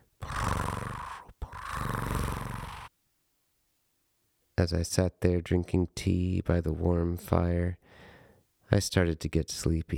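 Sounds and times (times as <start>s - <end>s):
human voice imitating a cat purring: 0.0s - 2.9s
speech: 4.6s - 8.0s, 8.7s - 9.9s.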